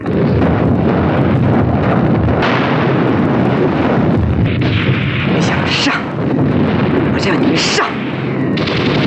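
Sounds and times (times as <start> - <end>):
artillery firing at a numbered target: 0.0 - 9.0.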